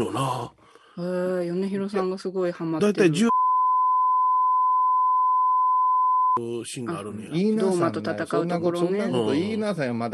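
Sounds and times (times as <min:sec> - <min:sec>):
speech: 0:00.0 - 0:03.3, 0:06.4 - 0:10.1
censor bleep tone over a spoiler: 0:03.3 - 0:06.4.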